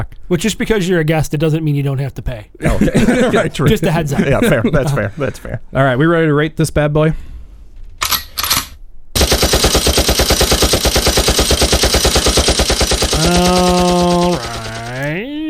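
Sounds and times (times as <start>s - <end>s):
speech: 0.0s - 7.3s
laughter: 2.6s - 5.6s, 13.1s - 15.4s
machine gun fire sound effect: 8.4s - 15.2s.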